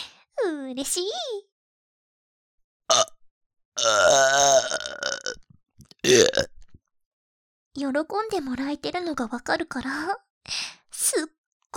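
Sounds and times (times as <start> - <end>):
speech: 0.7 - 1.5, 7.8 - 11.7
loud burps: 2.9 - 3.2, 3.8 - 5.4, 6.0 - 6.6.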